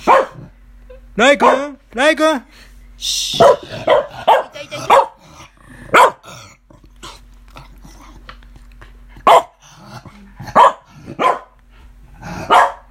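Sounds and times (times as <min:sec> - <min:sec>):
dog barking: 0:00.0 - 0:00.5, 0:01.4 - 0:01.8, 0:03.4 - 0:05.2, 0:05.9 - 0:06.3, 0:09.2 - 0:09.6, 0:10.5 - 0:11.6, 0:12.4 - 0:12.8
speech: 0:01.2 - 0:05.0.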